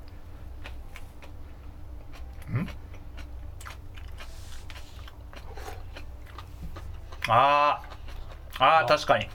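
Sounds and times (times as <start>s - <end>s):
person chewing a dish containing sliced garlic: 0.0s - 9.3s
person murmuring: 2.4s - 2.8s.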